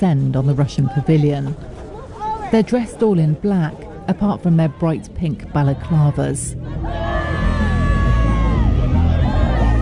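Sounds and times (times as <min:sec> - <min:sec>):
speech: 0:00.0 - 0:01.7, 0:02.5 - 0:07.0
crowd chatter and movement: 0:00.0 - 0:09.8
protesters shouting: 0:03.8 - 0:09.8.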